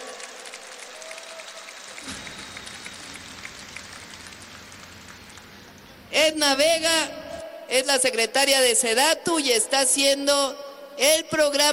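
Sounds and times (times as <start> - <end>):
audience clapping: 0.0 - 6.1
speech: 6.1 - 11.7.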